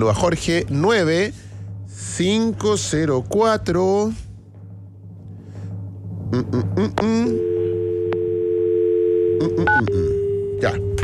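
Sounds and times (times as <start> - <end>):
speech: 0.0 - 4.2, 6.3 - 7.5, 9.4 - 11.0
low hum: 0.0 - 11.0
electronic ringing tone of an outgoing phone call: 7.2 - 11.0.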